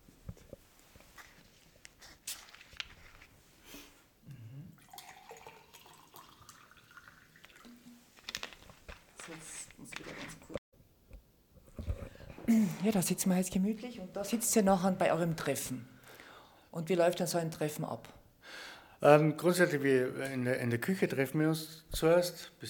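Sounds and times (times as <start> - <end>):
sparkling water pouring into a glass: 4.7 - 8.2
light fizzing of sparkling water: 4.8 - 8.5
speech: 12.5 - 15.9, 16.8 - 18.2, 19.0 - 22.6.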